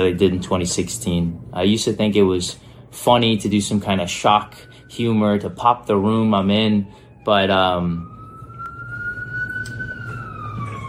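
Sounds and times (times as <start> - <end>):
speech: 0.0 - 8.1
low rumble of traffic: 0.0 - 10.8
ambulance siren passing by: 3.4 - 10.8.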